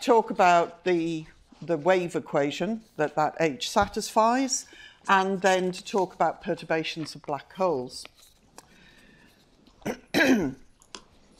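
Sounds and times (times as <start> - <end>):
speech: 0.0 - 8.2, 9.8 - 10.6
person clearing throat: 9.8 - 10.6
person coughing: 9.8 - 10.6.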